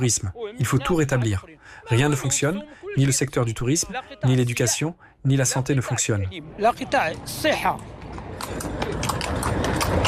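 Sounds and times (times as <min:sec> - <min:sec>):
speech: 0:00.0 - 0:08.7
horse hooves clip-clopping on a hard surface pulling a carriage: 0:07.8 - 0:10.0.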